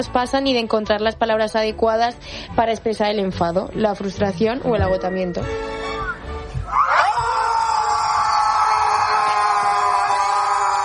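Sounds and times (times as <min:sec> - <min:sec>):
speech: 0:00.0 - 0:05.9
group of people screaming together: 0:06.0 - 0:10.8.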